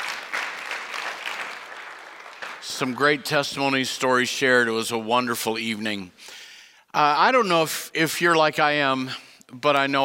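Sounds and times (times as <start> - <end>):
audience applauding: 0.0 - 3.4
speech: 2.6 - 10.0.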